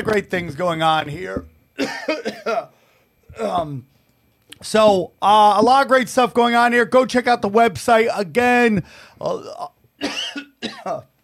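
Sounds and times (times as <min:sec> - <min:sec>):
speech: 0:00.0 - 0:02.8, 0:03.4 - 0:03.9, 0:04.6 - 0:11.1
harsh coughs: 0:01.8 - 0:02.7, 0:10.0 - 0:11.1.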